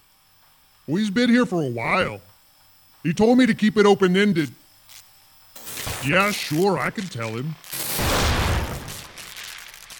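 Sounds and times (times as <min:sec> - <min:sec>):
speech: 0:00.9 - 0:02.3, 0:03.0 - 0:04.6, 0:06.0 - 0:08.1
explosion with deep heavy boom: 0:07.9 - 0:09.2.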